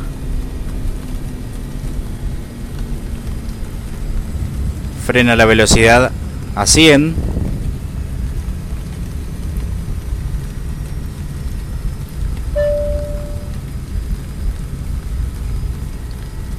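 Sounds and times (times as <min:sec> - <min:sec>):
steady dense rain: 0:00.0 - 0:16.5
speech: 0:05.1 - 0:07.3
brief electronic beep: 0:12.6 - 0:13.5.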